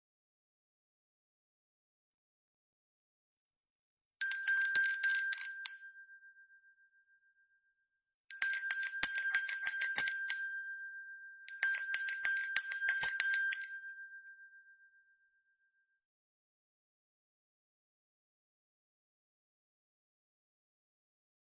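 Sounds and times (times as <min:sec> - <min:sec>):
hand bell ringing: 0:04.2 - 0:06.2, 0:08.3 - 0:10.8, 0:11.5 - 0:14.3.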